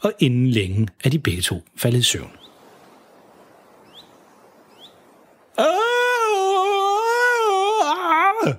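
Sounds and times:
speech: 0.0 - 2.5, 5.6 - 5.8
man screaming in shock while fishing in a boat: 5.5 - 8.5.

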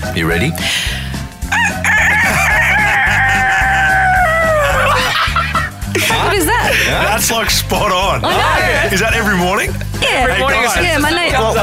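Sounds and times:
low rhythmic backing: 0.0 - 11.6
speech: 0.1 - 1.0, 6.0 - 11.6
person imitating a rooster crowing: 1.5 - 5.2
laughter: 1.9 - 11.6.

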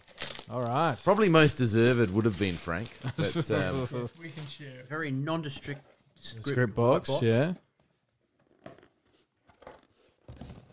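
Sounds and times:
wrapping paper being torn open on a plain box: 0.0 - 5.1
speech: 0.5 - 7.6.

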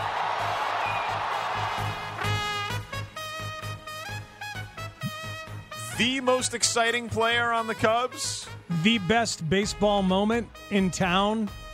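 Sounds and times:
baseball stadium crowd cheering after home run: 0.0 - 2.8
bright rhythmic stadium music with a steady beat: 0.0 - 11.7
speech: 6.0 - 11.6.

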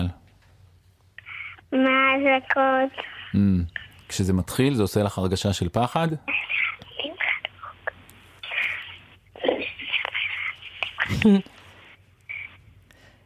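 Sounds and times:
girl whispering to her mother: 1.2 - 4.0, 6.2 - 11.5, 12.3 - 12.6
speech: 1.7 - 7.2, 11.1 - 11.6.

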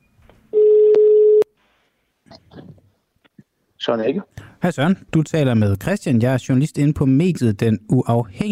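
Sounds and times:
telephone ringing tone of an outgoing phone call: 0.5 - 1.5
speech: 3.9 - 8.4.

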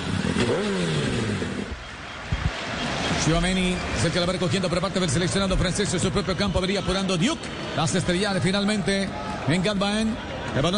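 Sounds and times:
motorcycle engine revving: 0.0 - 1.9
speech: 0.5 - 1.0, 3.2 - 10.7.

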